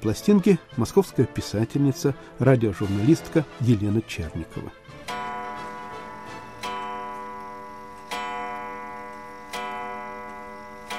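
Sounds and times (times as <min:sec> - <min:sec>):
speech: 0:00.0 - 0:05.2
antique clock ticking with a sustained metallic ring: 0:05.0 - 0:10.9.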